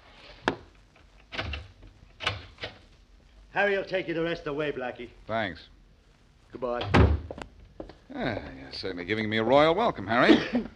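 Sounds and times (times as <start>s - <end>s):
low steady hiss: 0.0s - 10.7s
speech: 3.6s - 5.8s, 6.5s - 7.2s, 8.1s - 10.7s
door being opened with clunks and rattling knocks: 6.8s - 7.4s.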